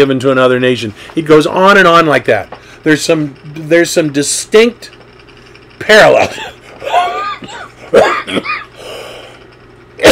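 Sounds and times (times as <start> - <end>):
speech: 0.0 - 5.0, 5.8 - 8.5
sharp coughs: 6.9 - 8.8.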